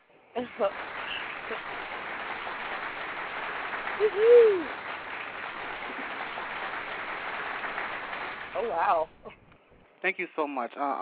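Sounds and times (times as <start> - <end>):
speech: 0.4 - 2.1, 4.0 - 4.8, 8.6 - 9.4, 10.0 - 10.9
crowd applause sound effect: 0.4 - 9.4
person whooping: 3.9 - 4.9.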